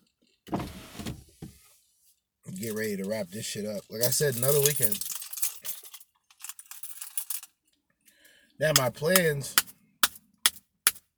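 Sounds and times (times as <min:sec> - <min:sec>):
car sunroof motor whirring shut: 0:00.5 - 0:01.5
speech: 0:02.6 - 0:05.1, 0:08.6 - 0:09.6.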